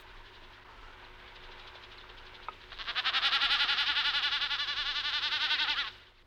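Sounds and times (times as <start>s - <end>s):
common snipe bleating tremolo: 2.6s - 6.1s.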